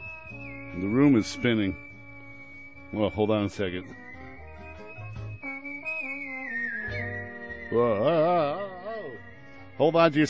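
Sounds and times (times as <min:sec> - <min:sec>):
woman whistling a melody with strong vibrato: 0:00.0 - 0:09.8
speech: 0:00.7 - 0:01.9, 0:02.9 - 0:04.0, 0:07.7 - 0:08.6, 0:09.8 - 0:10.2.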